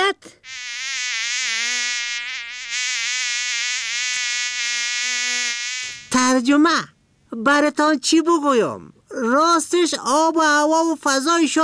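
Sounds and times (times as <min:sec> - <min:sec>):
mosquitoes and flies buzzing: 0:00.4 - 0:06.2
speech: 0:06.4 - 0:11.6.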